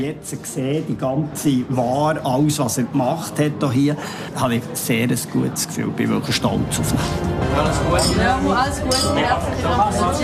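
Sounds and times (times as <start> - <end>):
lively group of people chatting: 0.0 - 10.2
speech: 0.0 - 10.2
glasses clinking in a toast: 7.9 - 9.4, 10.1 - 10.2.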